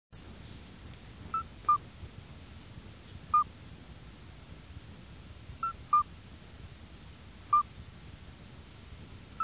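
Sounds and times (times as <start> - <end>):
soft background hiss: 0.2 - 9.4
midwife toad piping: 1.3 - 1.8, 3.3 - 3.5, 5.6 - 6.1, 7.5 - 7.7.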